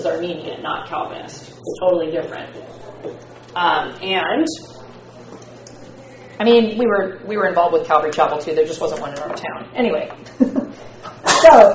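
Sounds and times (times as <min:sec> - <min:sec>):
speech: 0:00.0 - 0:04.8, 0:06.4 - 0:11.7
sneeze: 0:11.2 - 0:11.7.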